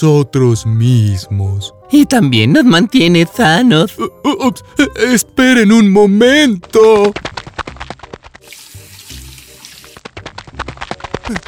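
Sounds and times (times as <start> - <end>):
speech: 0.0 - 7.7
hands splashing and clattering under the water: 7.0 - 11.4
tap water running while washing hands: 8.4 - 10.6.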